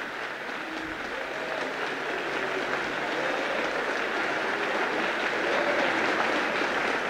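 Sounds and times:
large crowd applauding: 0.0 - 7.0.

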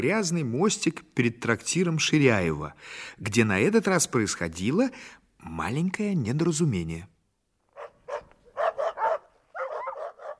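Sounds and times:
speech: 0.0 - 7.1
several dogs barking and yapping: 7.7 - 10.3.

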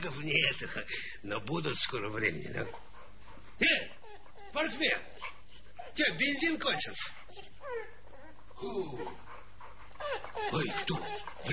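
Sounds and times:
speech: 0.2 - 2.9, 3.6 - 8.0, 8.6 - 9.2, 10.0 - 11.5
dog whimpering: 3.6 - 11.5.

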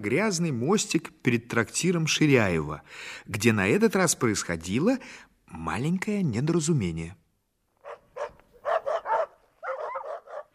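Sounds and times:
speech: 0.0 - 7.2
several dogs barking and yelping: 7.8 - 10.5.

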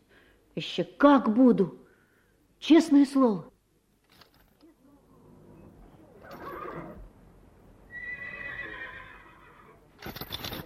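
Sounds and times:
low steady noise: 0.0 - 10.6
speech: 0.6 - 1.8, 2.6 - 3.5
horse neighing in a stable in the early morning: 6.2 - 7.1, 7.9 - 9.8.

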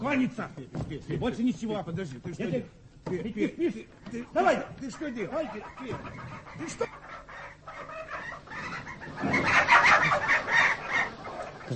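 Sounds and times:
speech: 0.0 - 6.9
several chickens clucking: 4.1 - 11.7.

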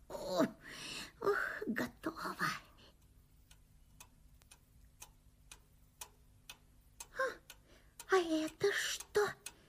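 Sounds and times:
clock ticking: 1.9 - 9.6.

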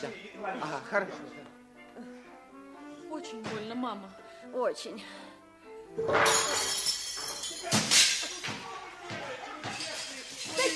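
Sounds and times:
speech: 0.0 - 2.2, 3.1 - 5.3, 6.0 - 6.7
dishes crashing and breaking: 6.0 - 8.7, 9.6 - 10.7
crockery clattering and breaking in a spill: 6.0 - 10.7.

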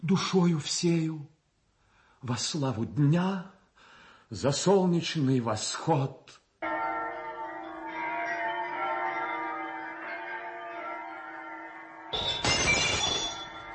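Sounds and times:
speech: 0.0 - 1.3, 2.2 - 3.6, 4.3 - 6.7
church bells ringing for Easter: 6.6 - 13.7
sudden bright crash: 12.2 - 13.7.

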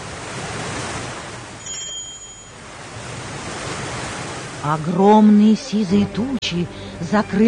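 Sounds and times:
stormy sea waves with ship rocking: 0.0 - 5.4
faint high ringing tone: 1.6 - 2.7
speech: 4.6 - 7.4.

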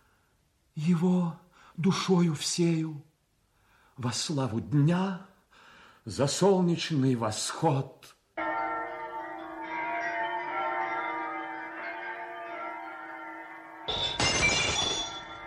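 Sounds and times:
speech: 0.8 - 3.1, 4.0 - 5.3, 6.0 - 8.2
church bells ringing: 8.4 - 15.4.

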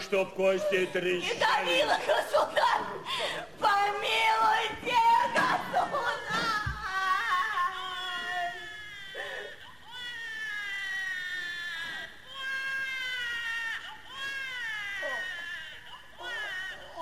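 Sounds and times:
speech: 0.1 - 5.0
newborn baby wailing: 6.0 - 16.9.

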